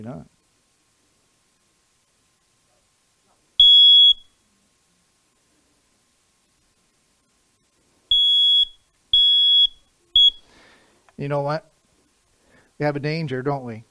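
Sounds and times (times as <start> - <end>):
speech: 0.0 - 0.3, 11.2 - 11.7, 12.8 - 13.8
smoke alarm beeping: 3.6 - 4.4, 8.1 - 10.5.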